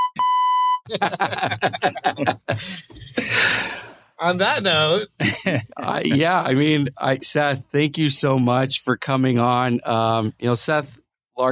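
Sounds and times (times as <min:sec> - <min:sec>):
censor bleep tone: 0:00.0 - 0:00.8
people chuckling and laughing: 0:00.9 - 0:03.9, 0:05.2 - 0:07.2
speech: 0:00.9 - 0:11.5.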